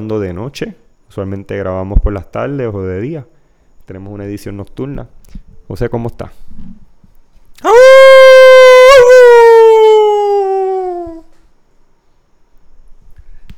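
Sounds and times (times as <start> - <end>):
speech: 0.0 - 6.8, 7.6 - 8.5
person imitating a wolf howl: 7.6 - 11.3.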